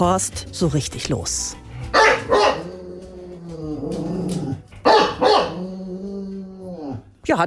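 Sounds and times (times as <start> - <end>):
speech: 0.0 - 1.6
bulldog barking gruffly: 1.9 - 2.8, 4.8 - 5.7
bulldog low rumbling growl: 2.1 - 7.2.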